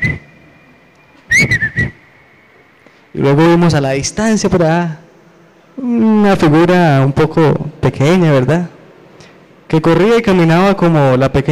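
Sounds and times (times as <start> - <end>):
person whistling a long held note: 0.0 - 3.1
speech: 3.2 - 5.0, 5.8 - 8.8, 9.7 - 11.5.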